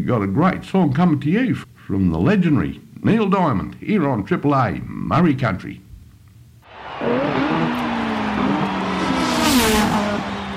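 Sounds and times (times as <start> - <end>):
speech: 0.0 - 5.8
Formula One race car engine roaring: 6.7 - 10.5.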